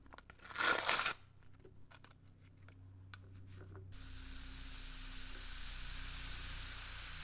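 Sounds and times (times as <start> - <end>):
baking powder bubbling with crackling fizz and hiss: 4.0 - 7.2
hot water poured over a packet of baking powder in a bowl: 4.0 - 7.2.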